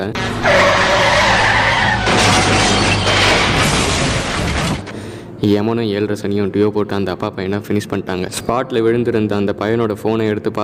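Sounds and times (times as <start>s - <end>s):
speech: 0.0s - 0.6s, 5.4s - 10.6s
water tanker lorry tire screech on a road: 0.2s - 4.9s
scraping debris from a lorry crash: 0.2s - 5.0s
water tanker lorry crash impacts: 0.2s - 5.1s.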